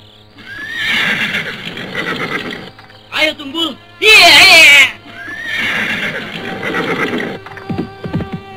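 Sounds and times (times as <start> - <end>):
horse neighing: 0.4 - 2.7, 4.2 - 7.5.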